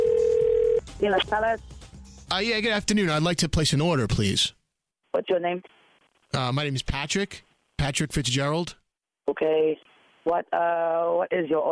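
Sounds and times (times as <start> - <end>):
electronic telephone ringing tone through the earpiece: 0.0 - 0.8
speech: 1.0 - 1.7, 2.3 - 4.6, 5.2 - 11.7.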